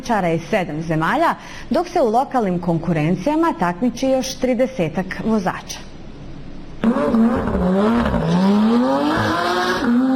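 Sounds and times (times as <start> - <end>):
speech: 0.0 - 5.9, 6.9 - 8.1
race car engine revving on a hill-climb track about 3.8 km long: 6.8 - 10.1.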